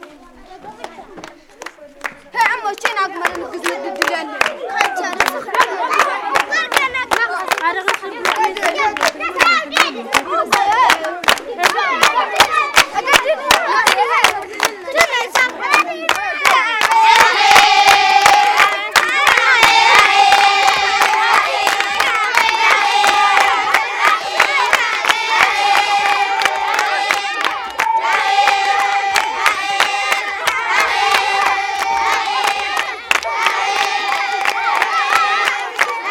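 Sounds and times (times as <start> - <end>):
children singing dance song at Tuareg camp in North Niger: 0.0 - 36.0.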